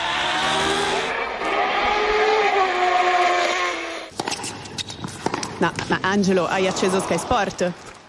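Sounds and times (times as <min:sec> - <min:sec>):
Formula 1 race car engine roaring: 0:00.0 - 0:04.1
speech: 0:05.6 - 0:07.9.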